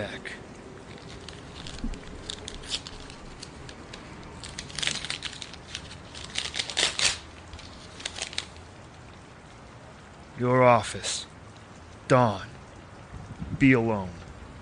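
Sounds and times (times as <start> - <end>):
paper envelope handled and torn open: 0.9 - 8.7
speech: 10.4 - 11.2, 12.1 - 12.5, 13.6 - 14.2.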